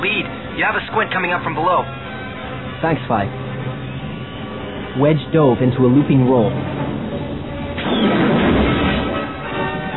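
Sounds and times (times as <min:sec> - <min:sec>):
speech: 0:00.6 - 0:02.0, 0:02.8 - 0:03.4, 0:05.0 - 0:06.8
interceptor starfighter crashing into a tower: 0:07.7 - 0:09.9
sci-fi laser cannon fire: 0:07.8 - 0:09.3.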